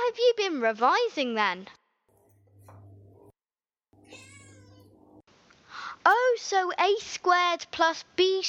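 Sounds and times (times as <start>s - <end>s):
speech: 0.1s - 1.8s, 6.0s - 8.4s
cat meowing: 4.0s - 5.2s.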